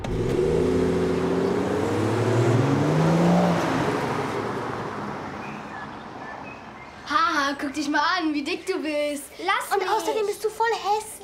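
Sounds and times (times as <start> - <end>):
car engine revving while accelerating: 0.0 - 6.8
speech: 7.6 - 11.2.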